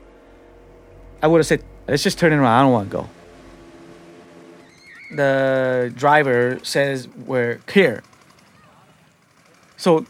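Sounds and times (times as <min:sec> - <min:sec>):
faint rising whine: 0:00.0 - 0:07.6
motorboat engine droning on water: 0:00.0 - 0:10.0
speech: 0:01.2 - 0:03.2, 0:05.1 - 0:08.1, 0:09.8 - 0:10.0.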